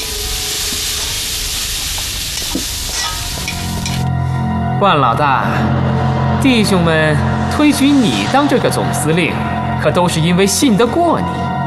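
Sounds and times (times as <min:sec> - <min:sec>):
food stir-frying in an iron wok: 0:00.0 - 0:04.1
ladle scraping and clinking against an iron wok: 0:03.0 - 0:04.1
speech: 0:04.8 - 0:11.5.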